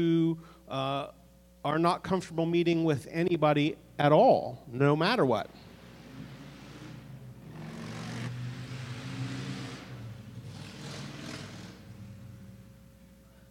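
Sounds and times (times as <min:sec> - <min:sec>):
speech: 0:00.0 - 0:05.6
motorcycle engine revving: 0:05.5 - 0:12.8.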